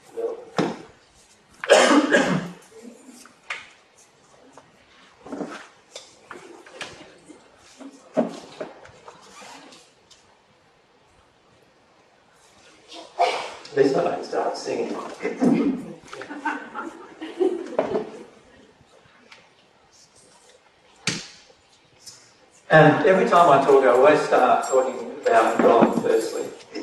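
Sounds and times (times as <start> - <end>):
person with a throat problem coughing: 1.7 - 2.6
speech: 13.8 - 15.8, 22.8 - 26.5
laughter: 15.1 - 18.4.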